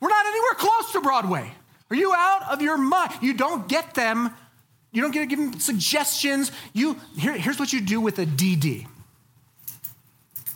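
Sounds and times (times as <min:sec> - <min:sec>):
speech: 0:01.0 - 0:09.0
keys jangling: 0:09.6 - 0:10.5.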